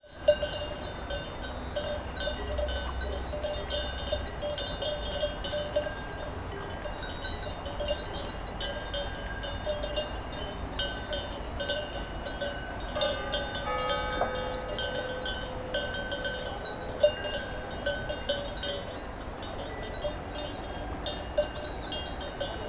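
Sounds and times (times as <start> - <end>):
bells: 0.0 - 22.6.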